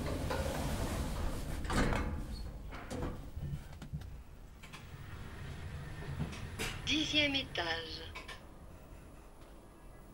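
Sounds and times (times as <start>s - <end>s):
elevator doors sliding shut: 0.0s - 3.2s, 4.6s - 7.1s
steady mechanical hum: 0.0s - 10.1s
speech: 6.9s - 8.1s.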